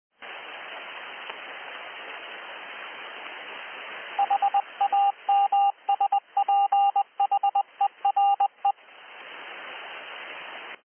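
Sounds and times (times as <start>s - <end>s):
CW beacon on 7005 kHz: 4.2s - 8.8s.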